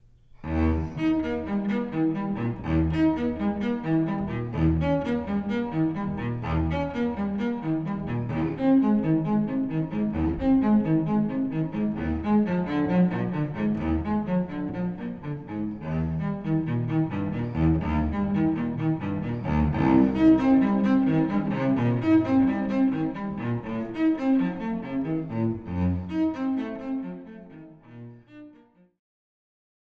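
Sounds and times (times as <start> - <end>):
prelude of a classical suite in E flat major: 0.0 - 29.0.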